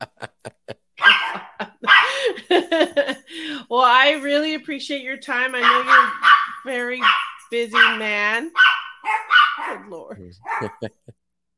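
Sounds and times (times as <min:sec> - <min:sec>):
laughter: 0:00.0 - 0:03.6, 0:10.0 - 0:11.1
dog barking at home: 0:01.0 - 0:02.2, 0:05.6 - 0:10.9
speech: 0:03.8 - 0:08.6, 0:10.3 - 0:11.0.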